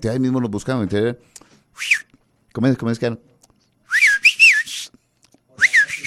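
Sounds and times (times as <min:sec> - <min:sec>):
speech: 0:00.0 - 0:03.3
person whistling an improvised rising-falling two-part signal: 0:01.8 - 0:02.1, 0:03.9 - 0:05.0, 0:05.6 - 0:06.0.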